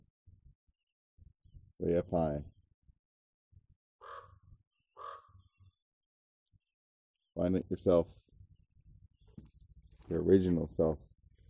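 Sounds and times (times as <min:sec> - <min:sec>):
speech: 0:01.8 - 0:02.6, 0:07.4 - 0:08.2, 0:10.1 - 0:11.1
crow cawing: 0:04.0 - 0:04.4, 0:05.0 - 0:05.4.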